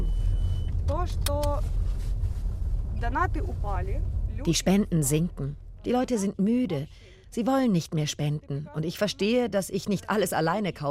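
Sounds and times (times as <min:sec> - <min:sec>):
car driving in Ukraine heard from inside: 0:00.0 - 0:07.4
speech: 0:01.0 - 0:01.8, 0:03.0 - 0:10.8.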